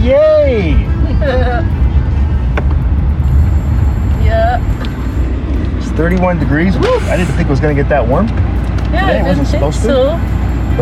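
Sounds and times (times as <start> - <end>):
low road rumble in the cabin of a moving car: 0.0 - 10.8
speech: 0.1 - 0.3, 6.0 - 10.4.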